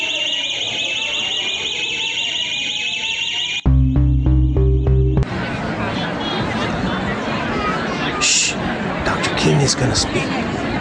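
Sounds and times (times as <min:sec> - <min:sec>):
murmur of a crowd: 0:00.0 - 0:03.8, 0:05.2 - 0:10.8
fire alarm blaring: 0:00.0 - 0:04.7
warbling beep: 0:03.7 - 0:05.2
speech: 0:09.7 - 0:10.6.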